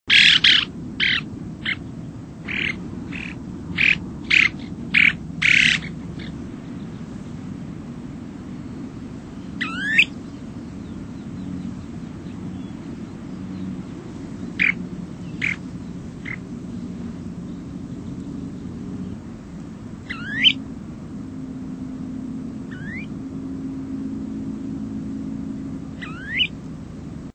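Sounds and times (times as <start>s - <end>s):
snowy plover calling: 0.1s - 7.2s, 8.5s - 20.8s, 22.2s - 23.2s, 24.2s - 27.0s.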